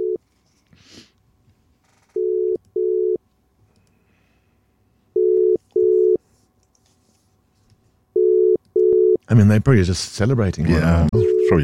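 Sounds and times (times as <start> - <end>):
ringback tone of an outgoing WhatsApp call: 0.0 - 0.2, 2.2 - 3.2, 5.2 - 6.2, 8.2 - 9.2, 11.1 - 11.6
speech: 9.3 - 11.6.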